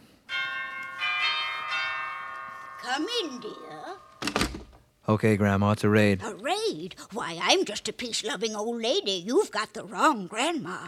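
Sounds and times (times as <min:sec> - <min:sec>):
cottage doorbell chimes: 0:00.3 - 0:04.4
speech: 0:02.9 - 0:04.4, 0:05.1 - 0:10.8.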